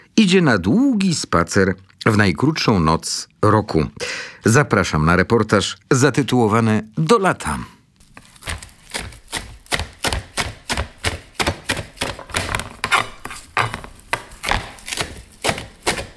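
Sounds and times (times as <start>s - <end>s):
speech: 0.2s - 7.8s
fresh parsley coarsely chopped with a knife: 8.0s - 16.1s.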